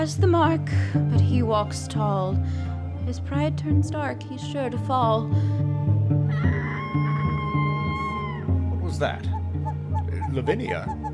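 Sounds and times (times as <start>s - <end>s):
speech: 0.0s - 5.7s, 8.9s - 9.4s, 10.3s - 11.0s
rooster crowing: 6.3s - 8.5s
birds calling: 8.0s - 11.1s.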